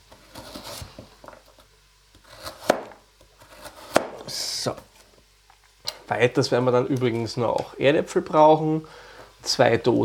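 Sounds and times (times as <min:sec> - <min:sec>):
knife slicing carrots thin on a board for a vegetarian goulash: 0:00.2 - 0:00.9, 0:02.2 - 0:04.3
speech: 0:04.6 - 0:04.9, 0:06.1 - 0:10.0.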